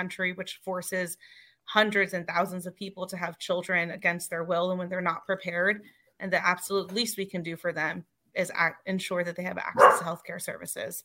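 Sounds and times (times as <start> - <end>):
speech: 0.0 - 11.0
dog barking: 9.8 - 10.1.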